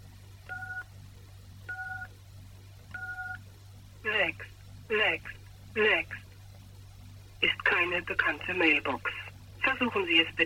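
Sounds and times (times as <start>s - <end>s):
low constant hum: 0.0s - 10.4s
telephone keypad tones entering a mailbox number at an automated prompt: 0.5s - 0.8s, 1.7s - 2.1s, 3.0s - 3.4s
speech: 4.9s - 6.2s, 7.9s - 9.2s, 9.8s - 10.4s.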